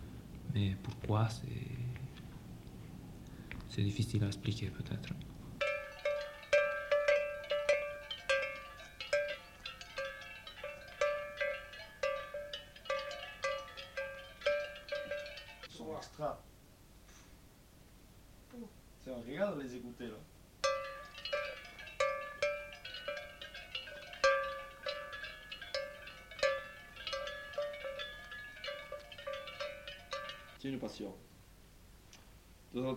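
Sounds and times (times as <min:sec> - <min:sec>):
speech: 0:00.6 - 0:02.0, 0:03.7 - 0:05.3, 0:30.8 - 0:31.3, 0:32.7 - 0:32.9
cowbells clanking on a grazing herd: 0:05.6 - 0:15.7, 0:20.6 - 0:30.6.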